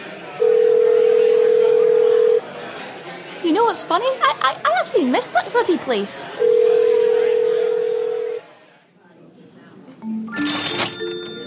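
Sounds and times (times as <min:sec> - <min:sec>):
electronic ring tone of a phone call to a shop: 0:00.4 - 0:02.4, 0:06.4 - 0:08.4, 0:10.0 - 0:11.4
speech: 0:03.4 - 0:06.6.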